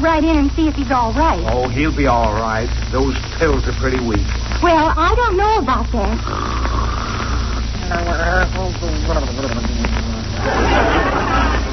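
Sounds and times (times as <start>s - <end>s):
speech: 0.0s - 6.8s, 7.9s - 11.7s
steady low hum: 0.0s - 11.7s
man snoring loudly and theatrically: 6.2s - 8.4s
laughter: 9.0s - 11.7s.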